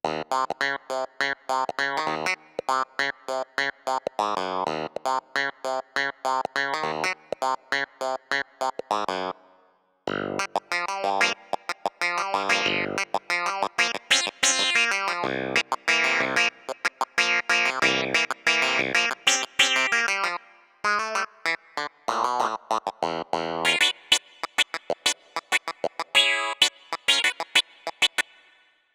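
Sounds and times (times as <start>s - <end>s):
clavinet on a Yamaha Tyros3 keyboard: 0.0s - 9.4s, 10.1s - 28.5s.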